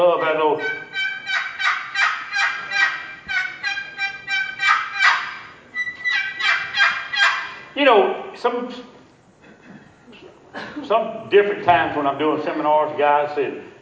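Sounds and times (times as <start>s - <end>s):
aluminum turkey call with aluminum lid yelping: 0.0s - 7.7s
speech: 8.4s - 8.9s, 10.9s - 13.7s.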